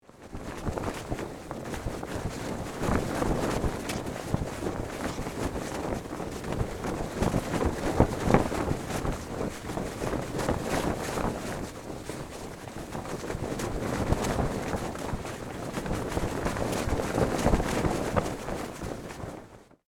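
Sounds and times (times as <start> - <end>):
ship flag flapping on flag pole: 0.0 - 19.8.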